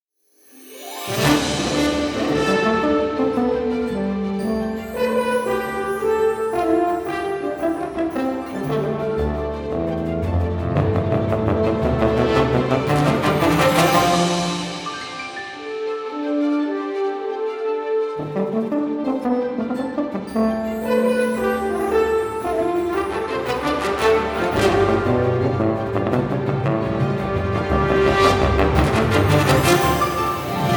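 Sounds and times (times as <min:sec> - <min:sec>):
tuba: 0:01.0 - 0:15.8, 0:17.7 - 0:30.7
French horn: 0:01.1 - 0:16.9, 0:17.8 - 0:30.7.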